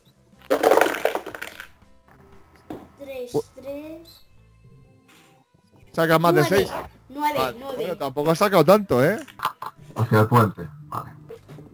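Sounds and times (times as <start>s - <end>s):
four dice rolled across a hard surface in a tabletop game: 0.4s - 1.8s
speech: 3.1s - 4.3s, 6.0s - 9.3s, 10.0s - 11.1s.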